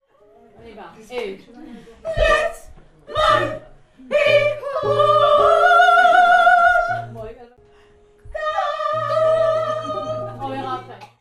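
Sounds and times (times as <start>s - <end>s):
soprano singing: 2.1s - 7.4s, 8.2s - 11.0s.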